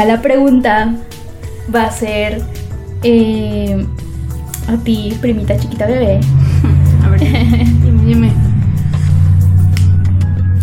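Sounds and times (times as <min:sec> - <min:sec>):
speech: 0:00.0 - 0:04.0, 0:04.7 - 0:08.4
car driving past outside: 0:03.9 - 0:10.6
laughter: 0:06.4 - 0:08.5.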